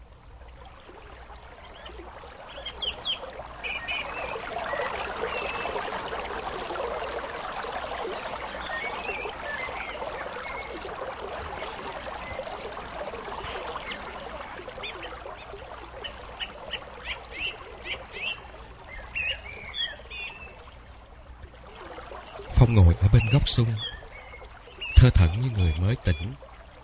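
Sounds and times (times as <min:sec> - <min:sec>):
river water flowing and trickling: 0:00.0 - 0:26.8
faint bird chirps: 0:01.5 - 0:06.0, 0:08.3 - 0:10.8, 0:13.4 - 0:20.7, 0:22.2 - 0:26.4
speech: 0:22.7 - 0:23.9, 0:25.0 - 0:26.5.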